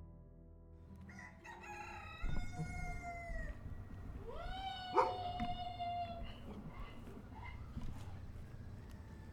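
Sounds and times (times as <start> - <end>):
rooster crowing: 1.0 - 9.3
low rumble of outdoor noise: 1.3 - 9.3.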